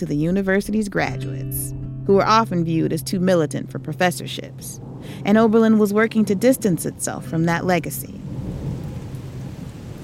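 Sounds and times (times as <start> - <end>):
speech: 0.0 - 8.3
steady dense rainfall on a cold November night in northern Ohio: 3.0 - 10.0
deep rolling rumble of thunder: 8.2 - 10.0.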